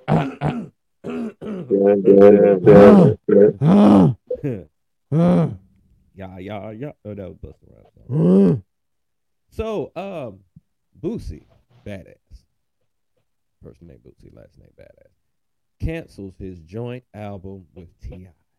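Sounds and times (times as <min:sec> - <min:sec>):
man clearing his throat with voiced grunts and groans: 0:00.0 - 0:05.6
speech: 0:01.8 - 0:05.6, 0:06.2 - 0:08.7, 0:09.5 - 0:12.2, 0:13.6 - 0:15.2, 0:15.8 - 0:18.4.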